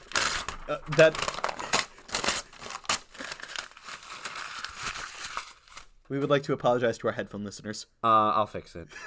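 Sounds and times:
large sheet of paper torn and crumpled: 0.0 - 6.0
speech: 0.7 - 1.4, 6.1 - 9.0.

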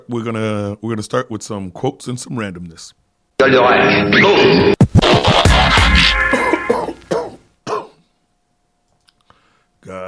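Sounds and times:
speech: 0.1 - 4.8
person clearing throat harshly: 5.5 - 8.1
person coughing roughly: 5.7 - 8.1.

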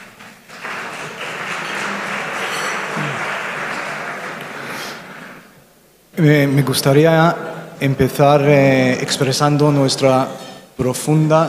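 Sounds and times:
room full of people applauding: 0.0 - 5.5
speech: 6.2 - 11.4.

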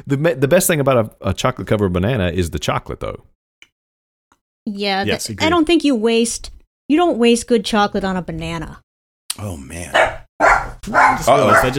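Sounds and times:
speech: 0.0 - 3.4, 4.6 - 8.8, 9.4 - 10.2, 10.8 - 11.7
dogs barking as someone arrives home: 9.9 - 11.7.

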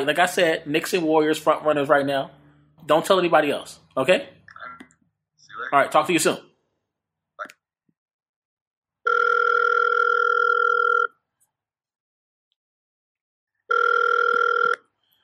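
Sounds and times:
speech: 0.0 - 4.4, 5.6 - 6.5
phone line ringing on the caller's end: 9.1 - 11.1, 13.7 - 14.8.

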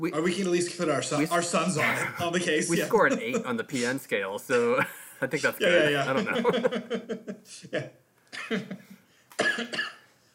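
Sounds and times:
speech: 0.0 - 10.0
laughter: 5.8 - 7.9
person coughing: 7.8 - 8.8, 9.4 - 10.1.

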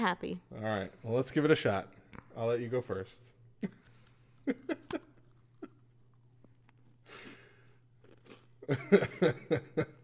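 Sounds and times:
speech: 0.0 - 3.9, 4.5 - 5.1, 8.7 - 9.9
woman biting and chewing a thin cookie with gummy filling: 3.7 - 8.8.

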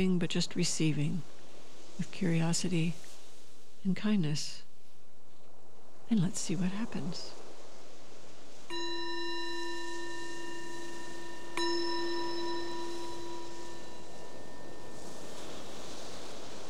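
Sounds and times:
speech: 0.0 - 1.4, 2.0 - 3.0, 3.8 - 4.6, 6.1 - 7.4
soft airy hiss: 0.0 - 16.6
meditation bell ringing: 8.7 - 16.6.

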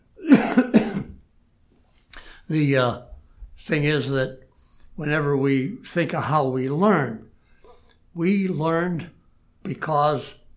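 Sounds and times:
person coughing harshly: 0.2 - 1.2
speech: 2.5 - 4.4, 5.0 - 7.3, 8.2 - 10.4.

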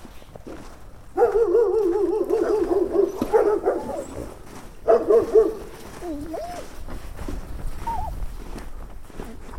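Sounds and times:
dog yelping softly: 1.2 - 4.2, 4.9 - 6.7, 7.8 - 8.2
dog barking: 1.2 - 6.6.

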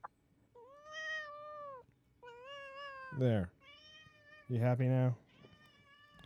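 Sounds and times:
female cat meowing: 0.6 - 4.5, 5.3 - 6.2
speech: 3.2 - 3.6, 4.5 - 5.2.

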